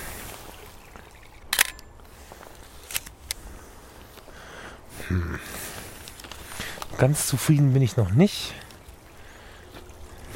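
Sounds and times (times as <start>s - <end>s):
small trickling brook: 0.0s - 3.0s, 5.9s - 10.3s
speech: 5.1s - 5.6s, 7.0s - 8.6s.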